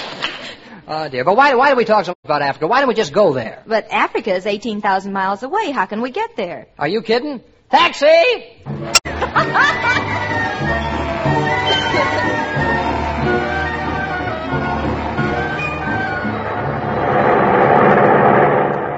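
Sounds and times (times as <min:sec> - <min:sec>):
speech: 0:00.9 - 0:13.5
audience laughter: 0:09.1 - 0:10.9, 0:11.5 - 0:12.9
airplane engine droning as the plane approaches Tangiers airport: 0:11.1 - 0:18.9.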